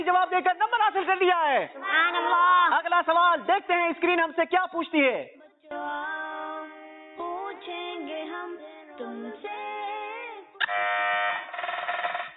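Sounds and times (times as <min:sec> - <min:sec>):
speech: 0:00.0 - 0:06.3, 0:07.2 - 0:09.8
electronic quiz show buzzer pressed by a contestant: 0:10.6 - 0:12.3.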